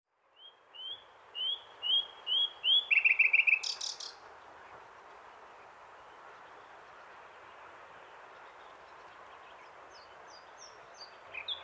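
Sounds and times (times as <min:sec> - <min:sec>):
common nightingale Luscinia megarhynchos singing: 0:00.3 - 0:04.2, 0:09.4 - 0:11.6.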